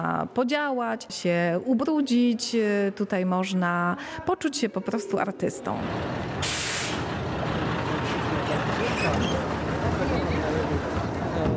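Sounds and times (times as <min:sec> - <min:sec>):
speech: 0:00.0 - 0:06.6, 0:09.0 - 0:09.6
old city bus engine idling: 0:05.8 - 0:11.5
hissing bursts of bus air brakes or doors releasing pressure: 0:06.4 - 0:07.1.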